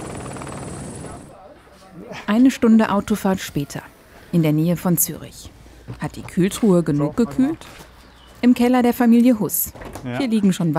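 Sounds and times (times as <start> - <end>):
helicopter rotor beating in a fast steady chop: 0.0 - 1.4
speech: 2.1 - 10.7.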